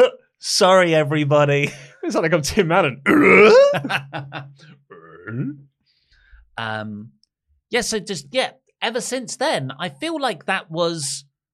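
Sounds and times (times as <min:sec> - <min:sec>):
speech: 0:00.0 - 0:05.7, 0:06.6 - 0:11.3
stifled burp: 0:03.0 - 0:03.8, 0:04.6 - 0:05.7
laughter: 0:03.4 - 0:04.7.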